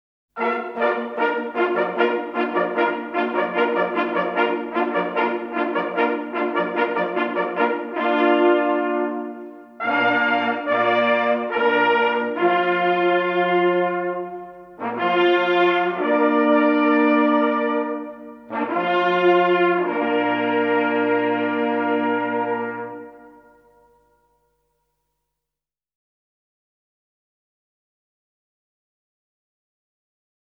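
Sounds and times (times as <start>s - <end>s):
hunting horn signals: 0.4s - 24.2s.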